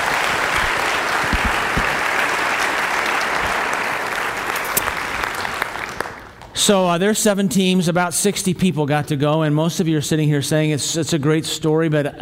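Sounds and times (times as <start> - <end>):
sustained applause from a large audience: 0.0 - 6.4
speech: 6.6 - 12.2.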